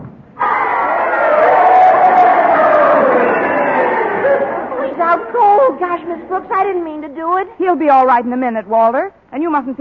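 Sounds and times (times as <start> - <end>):
individual yells and whoops: 0.4 - 5.8
large crowd cheering and shouting at a fight: 0.4 - 6.3
speech: 6.2 - 9.7.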